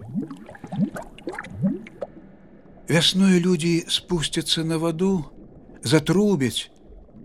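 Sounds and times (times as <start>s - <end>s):
bubbles gurgling up through water: 0.0s - 2.3s, 6.8s - 7.2s
speech: 2.9s - 6.7s.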